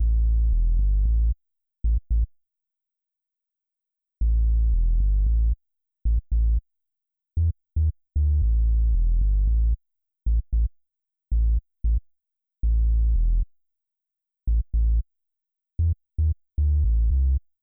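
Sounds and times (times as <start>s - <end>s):
bass with added sub bass: 0.0s - 2.3s, 4.2s - 6.6s, 7.4s - 13.5s, 14.5s - 15.1s, 15.8s - 17.4s.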